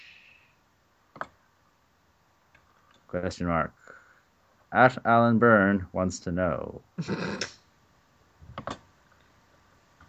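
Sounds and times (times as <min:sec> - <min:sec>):
hiss: 0:00.0 - 0:10.0
tapping on a phone screen while typing a tweet: 0:01.1 - 0:01.4
speech: 0:03.1 - 0:04.0, 0:04.7 - 0:07.6.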